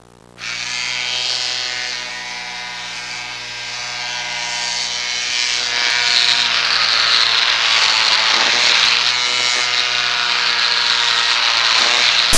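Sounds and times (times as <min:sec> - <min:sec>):
person shaving: 0:00.4 - 0:12.3.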